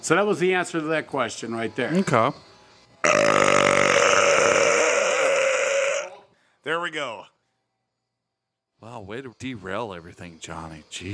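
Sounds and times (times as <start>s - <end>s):
speech: 0.0s - 3.3s, 6.6s - 7.3s, 8.8s - 11.1s
long loud burp: 3.0s - 6.2s.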